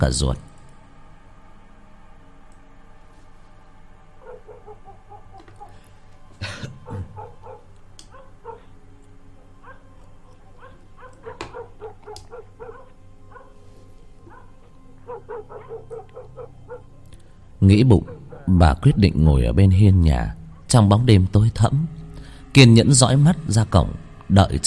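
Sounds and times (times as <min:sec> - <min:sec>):
speech: 0:00.0 - 0:00.5, 0:17.7 - 0:22.0, 0:22.6 - 0:24.6
dogs barking far away at night: 0:04.1 - 0:18.8.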